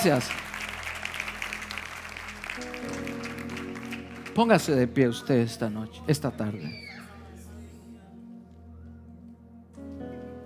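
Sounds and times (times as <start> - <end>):
speech: 0.0 - 0.5, 4.4 - 6.8
audience applauding: 0.0 - 5.3
sustained keyboard or organ chords: 0.0 - 10.4.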